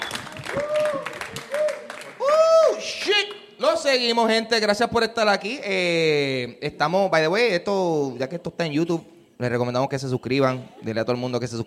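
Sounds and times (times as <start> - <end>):
audience clapping: 0.0 - 2.4
audience whooping and cheering: 0.0 - 3.0
speech: 3.9 - 11.6.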